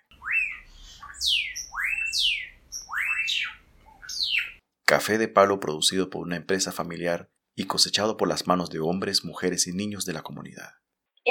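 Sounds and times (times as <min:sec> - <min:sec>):
small birds singing in the countryside: 0:00.0 - 0:04.6
speech: 0:04.9 - 0:11.2.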